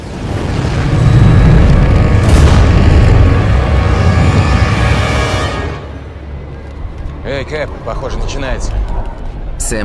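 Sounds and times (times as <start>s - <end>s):
landing shuttles exploding against an invisible force field: 0.0s - 5.6s
speech: 7.9s - 8.8s, 9.6s - 9.8s.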